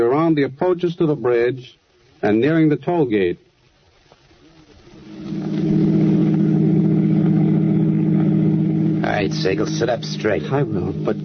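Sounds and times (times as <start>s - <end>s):
speech: 0.0s - 3.5s, 9.2s - 11.2s
road noise: 4.4s - 11.2s
car engine humming as the vehicle drives: 4.9s - 11.2s.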